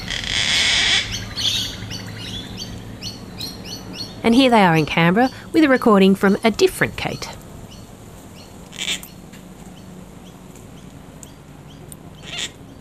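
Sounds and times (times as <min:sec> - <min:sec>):
gang-gang cockatoo creaking screech and calls in Eltham Victoria: 0:00.0 - 0:04.1, 0:08.7 - 0:09.1, 0:12.2 - 0:12.6
bird chatter: 0:00.0 - 0:12.7
faint outdoor ambience: 0:00.0 - 0:12.7
speech: 0:04.2 - 0:07.4.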